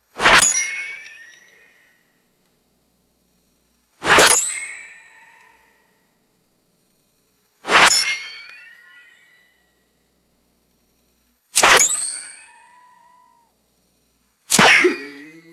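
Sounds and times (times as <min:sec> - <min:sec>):
bullets whizzing: 0:00.2 - 0:01.0, 0:04.0 - 0:04.4, 0:07.6 - 0:08.3, 0:11.6 - 0:12.4, 0:14.5 - 0:15.4
sharp metallic bullet ricochets: 0:00.2 - 0:01.2, 0:04.0 - 0:05.3, 0:07.7 - 0:08.8, 0:11.6 - 0:13.2, 0:14.5 - 0:15.4.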